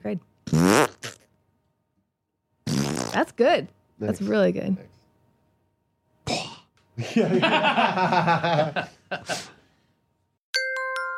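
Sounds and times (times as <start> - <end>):
speech: 0.0 - 0.7, 3.1 - 5.0, 7.0 - 9.5
person imitating a fart with the mouth: 0.4 - 1.3, 2.6 - 3.4
laughter: 7.0 - 9.5.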